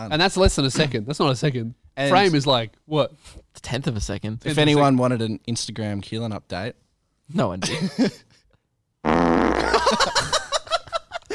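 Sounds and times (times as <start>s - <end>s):
speech: 0.0s - 8.3s
laughter: 7.6s - 8.3s, 9.6s - 11.3s
fart sound effect: 9.0s - 9.9s.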